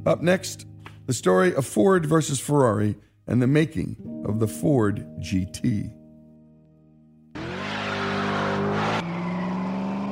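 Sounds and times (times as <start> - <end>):
speech: 0.0 - 6.0
American V8 engine revving: 7.3 - 10.1.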